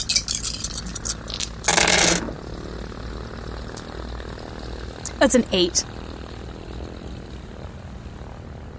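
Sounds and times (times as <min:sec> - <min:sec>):
dice rattling and tumbling across a hard surface: 0:00.0 - 0:02.3
propeller aircraft engines roaring on takeoff: 0:00.0 - 0:08.7
speech: 0:05.2 - 0:06.0.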